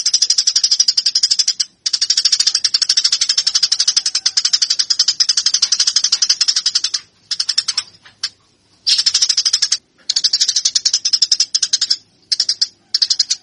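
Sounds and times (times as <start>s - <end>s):
Eurasian tree sparrow giving fighting calls: 0.0s - 13.4s.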